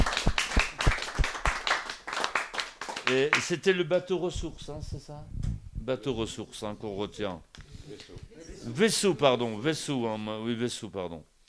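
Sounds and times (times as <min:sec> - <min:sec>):
audience applause: 0:00.0 - 0:03.4
speech: 0:03.1 - 0:11.3.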